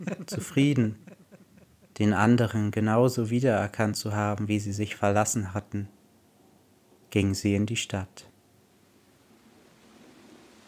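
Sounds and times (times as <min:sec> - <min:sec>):
speech: 0:00.0 - 0:01.1, 0:02.0 - 0:06.0, 0:07.1 - 0:08.3
laughter: 0:00.0 - 0:02.0
steady dense rain falling with soft low rumble: 0:08.9 - 0:10.6.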